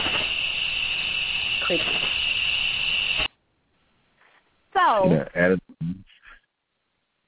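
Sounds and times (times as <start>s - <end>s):
dense chorus of crickets chirping: 0.0s - 3.3s
speech: 1.7s - 2.0s, 5.0s - 6.1s.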